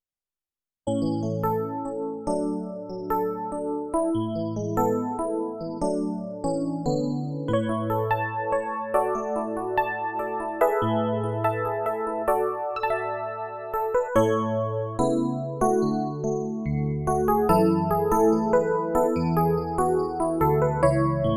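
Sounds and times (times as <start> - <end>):
Yamaha P45 electric keyboard: 0.9 - 21.3.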